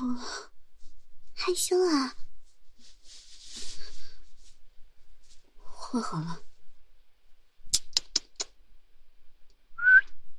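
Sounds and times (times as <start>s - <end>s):
speech: 1.5s - 2.2s, 5.9s - 6.5s
quick sharp clicks: 7.7s - 8.6s
person giving a rising whistle: 9.8s - 10.1s.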